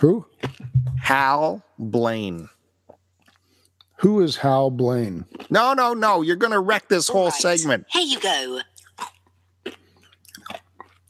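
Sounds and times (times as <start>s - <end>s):
speech: 0.0s - 2.6s, 4.0s - 9.1s
mouth smacking: 0.4s - 1.0s, 5.2s - 5.6s, 8.7s - 11.0s
wet crunchy chewing of food: 5.2s - 5.8s, 8.6s - 11.0s.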